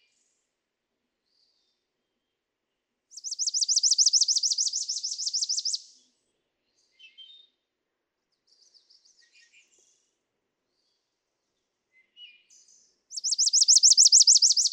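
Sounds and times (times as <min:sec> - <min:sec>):
Chipping Sparrow singing dry rapid trill: 0:03.1 - 0:05.9, 0:13.1 - 0:14.7.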